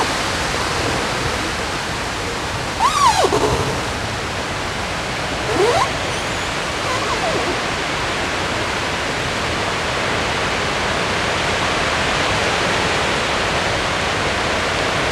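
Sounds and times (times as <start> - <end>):
steady rushing river water in Odense Denmark: 0.0 - 15.1
brief bird calls: 2.7 - 4.1, 5.3 - 7.8.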